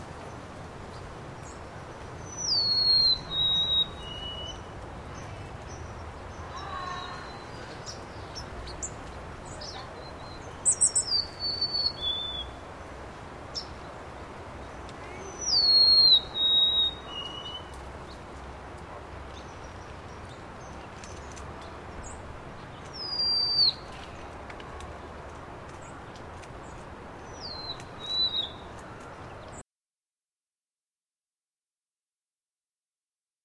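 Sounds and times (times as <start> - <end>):
golden-crowned bird songs in spring: 0.2 - 18.4, 19.2 - 24.8, 25.7 - 29.6.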